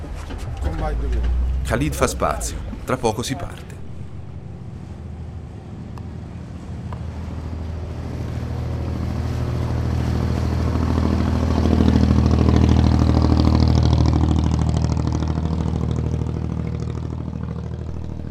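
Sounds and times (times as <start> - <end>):
wind noise: 0.0 - 9.3
rushing water: 0.0 - 15.8
flat-bottomed fibreglass boat engine roaring at racing speed: 0.0 - 18.3
speech: 0.8 - 3.7.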